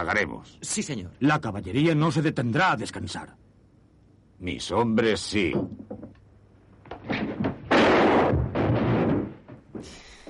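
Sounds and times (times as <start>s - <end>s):
speech: 0.0s - 3.4s, 4.4s - 5.9s
softer clattering scene noises: 5.4s - 10.2s
single loud gunshot in a film scene: 7.7s - 9.3s.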